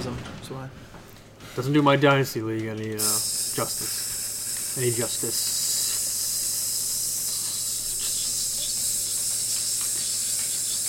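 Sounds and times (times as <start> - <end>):
speech: 0.0 - 1.0, 1.6 - 4.0, 4.8 - 5.6
sizzling hiss: 3.0 - 10.8.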